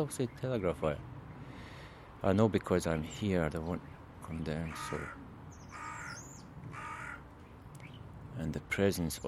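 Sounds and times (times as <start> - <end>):
speech: 0.0 - 1.1, 2.2 - 5.2, 8.4 - 9.2
flock of crows cawing on a rooftop and telegraph wire: 4.6 - 7.5.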